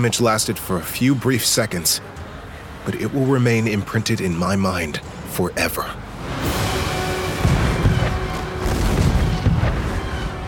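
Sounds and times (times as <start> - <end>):
speech: 0.0 - 6.6
heavy cannon broadside firing: 7.4 - 10.2.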